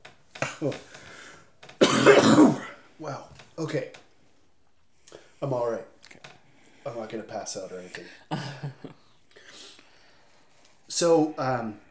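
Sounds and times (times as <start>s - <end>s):
speech: 0.5s - 1.0s, 2.2s - 4.0s, 5.4s - 5.9s, 6.8s - 8.8s, 11.0s - 11.8s
sharp cough: 1.8s - 2.8s.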